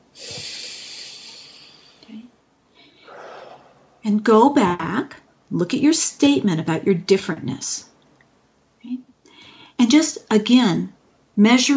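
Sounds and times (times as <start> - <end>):
person taking a deep breath during a guided group exercise: 0.2 - 2.0, 2.8 - 3.8, 9.3 - 9.8
speech: 4.0 - 7.9, 9.8 - 11.7.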